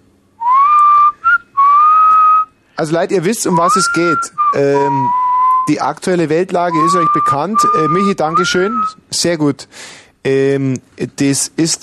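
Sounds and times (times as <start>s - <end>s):
person whistling a short clear phrase: 0.4s - 2.5s, 3.5s - 5.7s, 6.7s - 9.0s
speech: 2.8s - 11.8s.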